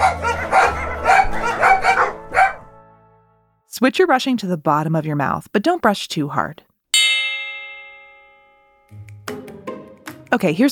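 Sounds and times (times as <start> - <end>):
several dogs barking: 0.0 - 2.7
speech: 3.8 - 6.7, 10.3 - 10.6.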